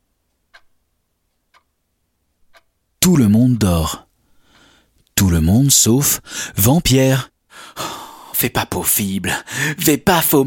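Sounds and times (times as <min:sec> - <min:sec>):
grandfather clock pendulum ticking: 0:00.2 - 0:01.8, 0:02.4 - 0:04.0
speech: 0:03.0 - 0:04.0, 0:05.2 - 0:07.8, 0:08.4 - 0:10.4.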